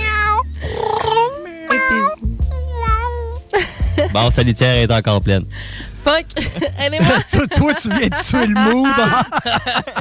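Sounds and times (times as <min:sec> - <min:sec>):
female cat meowing in a studio: 0:00.0 - 0:03.4
speech: 0:04.2 - 0:09.9
laughter: 0:06.4 - 0:09.9.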